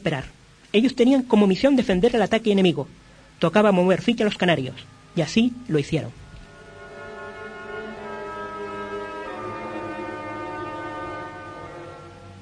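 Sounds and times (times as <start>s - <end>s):
speech: 0.0s - 6.2s
conch shell horns blowing in long droning blasts: 6.2s - 12.4s.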